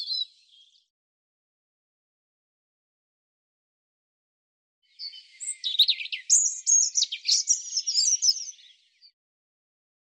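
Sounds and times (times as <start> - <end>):
European robin singing: 0.0 - 0.9, 4.8 - 9.2.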